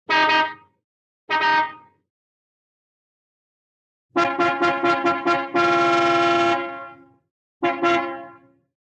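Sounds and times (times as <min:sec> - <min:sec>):
cartoon car horn honking: 0:00.1 - 0:00.7, 0:01.3 - 0:02.0, 0:04.1 - 0:08.6.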